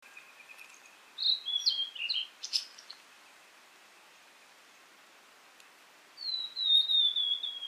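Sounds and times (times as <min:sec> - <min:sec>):
blue-and-white flycatcher singing: 0:00.1 - 0:03.0, 0:06.2 - 0:07.6.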